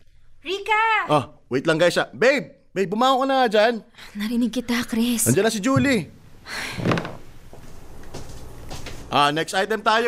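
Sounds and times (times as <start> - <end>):
speech: 0.7 - 7.0, 9.1 - 10.0
door opening with a loud thud: 6.8 - 7.3.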